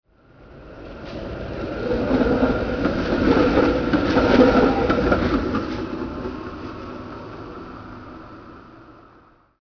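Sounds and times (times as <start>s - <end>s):
streetcar passing on railway: 0.1s - 9.6s.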